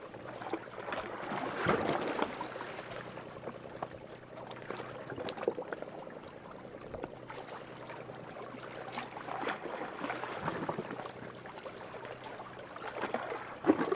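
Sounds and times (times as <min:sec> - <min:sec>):
gentle Croatian sea water lapping and sloshing: 0:00.0 - 0:13.9.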